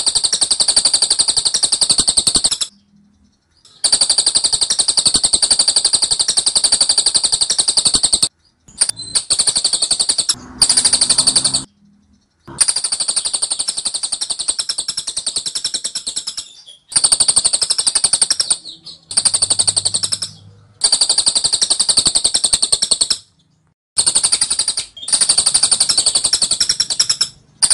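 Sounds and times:
scaly-crowned honeyeater rapid ticking song: 0:00.0 - 0:27.7.

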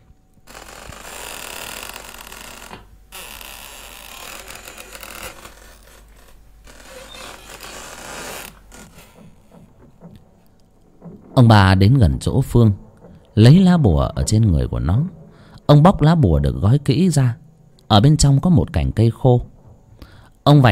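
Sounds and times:
old door hinges creaking as a door slowly opens: 0:00.4 - 0:11.6
speech: 0:11.4 - 0:12.8, 0:13.4 - 0:19.5, 0:20.5 - 0:20.7.

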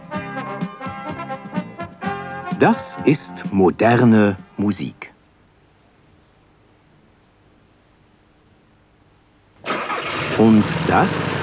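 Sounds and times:
speech: 0:02.6 - 0:05.0, 0:10.4 - 0:11.3
Volkswagen car engine roaring: 0:09.6 - 0:11.4.

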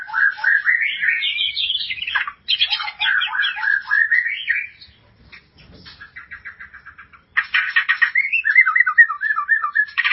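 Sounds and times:
white-rumped shama song: 0:00.0 - 0:02.0, 0:02.8 - 0:04.8, 0:08.2 - 0:10.0.

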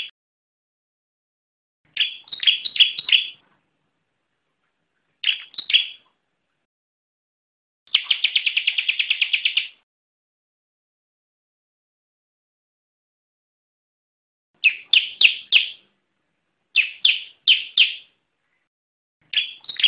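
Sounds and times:
bar-winged prinia song with rapid trill and ringing chirps: 0:01.9 - 0:03.4, 0:05.2 - 0:06.1, 0:07.9 - 0:09.8, 0:14.6 - 0:15.9, 0:16.7 - 0:18.2, 0:19.2 - 0:19.8.

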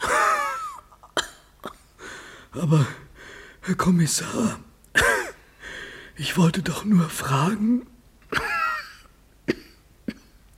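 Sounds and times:
person coughing: 0:00.0 - 0:02.0, 0:05.0 - 0:05.4, 0:08.3 - 0:10.5
speech: 0:02.5 - 0:04.7, 0:06.2 - 0:08.4.

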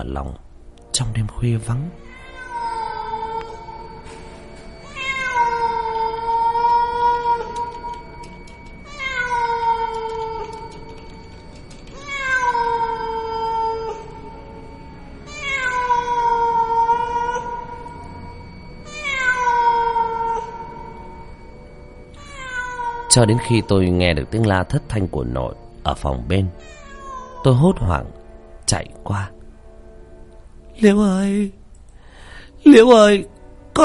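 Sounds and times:
speech: 0:00.0 - 0:02.2, 0:23.2 - 0:26.8, 0:27.4 - 0:29.4, 0:30.8 - 0:31.6, 0:32.6 - 0:33.8
cat meowing plaintively on a roof at night: 0:01.9 - 0:11.2, 0:11.9 - 0:21.3, 0:22.1 - 0:24.3, 0:26.5 - 0:28.0.

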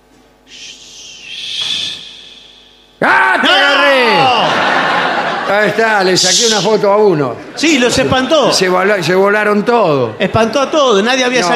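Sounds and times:
bird calling outdoors with a raspy hissing screech: 0:00.5 - 0:02.9
laughter: 0:04.0 - 0:08.3
speech: 0:05.5 - 0:11.5.

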